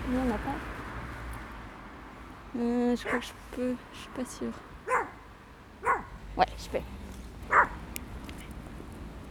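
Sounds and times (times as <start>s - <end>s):
speech: 0.1s - 0.8s, 2.5s - 4.7s, 6.4s - 7.0s
dog barking: 3.1s - 3.3s, 4.9s - 5.2s, 5.8s - 6.1s, 7.5s - 7.8s.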